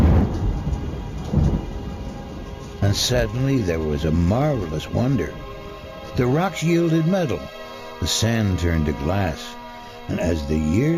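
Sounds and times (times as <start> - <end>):
deep rumbling thunder peal during a night storm: 0.0 - 6.4
steady rain-like hiss: 0.0 - 10.9
speech: 2.9 - 5.5, 6.2 - 10.9.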